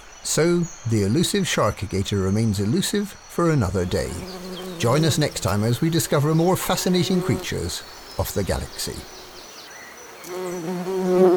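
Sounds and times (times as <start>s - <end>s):
speech: 0.3s - 9.2s
wasps buzzing: 4.0s - 11.3s.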